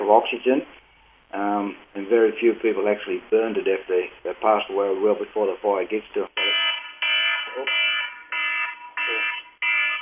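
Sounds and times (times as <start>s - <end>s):
speech: 0.1s - 6.4s
smoke alarm test beeping: 6.4s - 10.0s.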